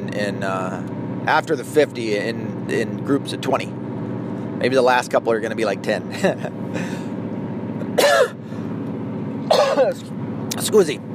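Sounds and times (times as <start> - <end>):
steady low hum: 0.0 - 11.1
speech: 0.2 - 3.8, 4.6 - 7.0, 9.8 - 11.1
raspy coughs from a lingering chest cough: 7.9 - 8.4, 9.5 - 10.0.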